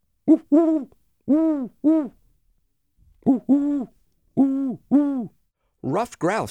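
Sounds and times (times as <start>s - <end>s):
owl hooting: 0.3s - 2.2s, 3.2s - 5.3s
speech: 0.3s - 2.2s, 3.2s - 6.4s.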